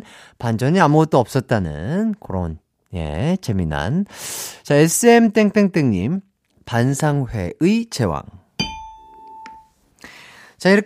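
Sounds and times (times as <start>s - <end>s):
speech: 0.0s - 8.7s, 10.6s - 10.8s
bright ding-dong-dang chime: 8.6s - 9.7s.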